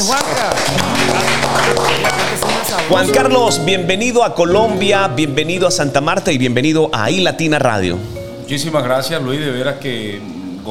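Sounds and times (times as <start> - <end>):
dense steady applause from an excited crowd: 0.0 - 3.6
voices of an excited crowd: 0.0 - 6.4
speech: 0.1 - 1.8, 2.7 - 10.6.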